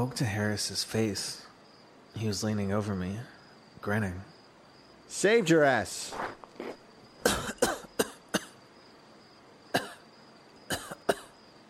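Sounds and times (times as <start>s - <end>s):
speech: 0.0s - 1.5s, 2.2s - 4.3s, 5.1s - 6.8s
person coughing up water: 7.2s - 8.6s, 9.8s - 10.0s, 10.7s - 11.4s.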